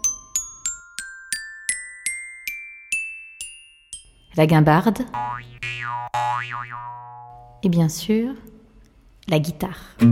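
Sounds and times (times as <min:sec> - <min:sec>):
metallophone playing bright ringing notes: 0:00.0 - 0:07.6
speech: 0:04.4 - 0:08.6, 0:09.3 - 0:10.1.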